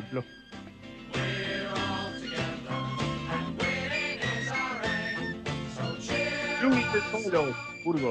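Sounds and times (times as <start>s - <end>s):
full steady band accompaniment: 0.0s - 8.0s
football club anthem sung by a group of football players: 1.0s - 7.2s.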